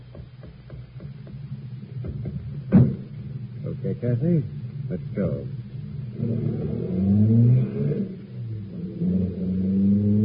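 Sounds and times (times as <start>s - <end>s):
car engine starting and revving: 2.5s - 10.2s
speech: 3.8s - 5.6s, 6.2s - 7.0s.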